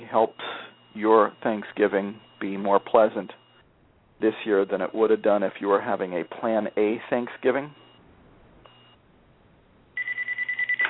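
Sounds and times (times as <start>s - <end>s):
speech: 0.1s - 3.4s, 4.2s - 7.8s
cell phone ringing with warbling electronic tone: 10.0s - 10.8s.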